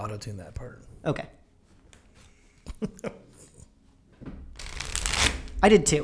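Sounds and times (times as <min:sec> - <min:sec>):
speech: 0:00.2 - 0:01.4, 0:02.7 - 0:03.2, 0:05.6 - 0:06.0
tarot cards being shuffled: 0:04.6 - 0:05.6.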